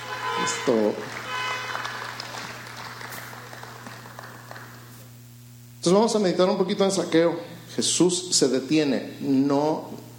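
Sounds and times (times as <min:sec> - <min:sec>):
speech: 0:00.5 - 0:01.2, 0:05.8 - 0:10.1
audience applauding: 0:00.6 - 0:05.1.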